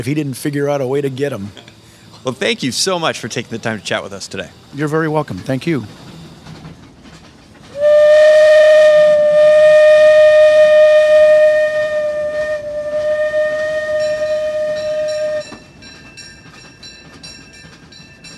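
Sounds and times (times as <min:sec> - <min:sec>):
speech: 0:00.0 - 0:06.1
steam train whistle on a railroad: 0:07.7 - 0:15.7.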